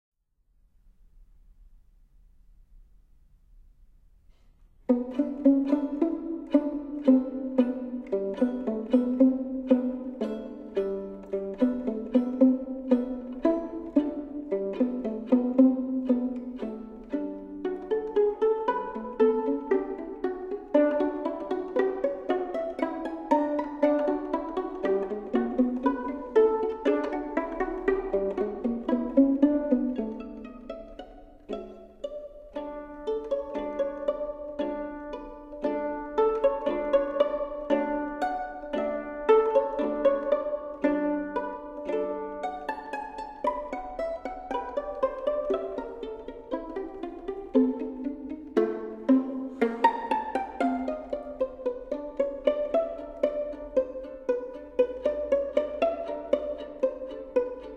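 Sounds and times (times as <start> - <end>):
violin duet played pizzicato: 4.3 - 57.7.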